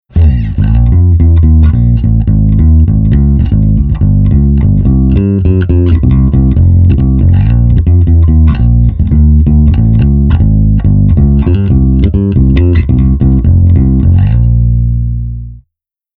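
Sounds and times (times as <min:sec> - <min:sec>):
bass amp simulation with 8x10 cabinet: 0:00.0 - 0:15.7.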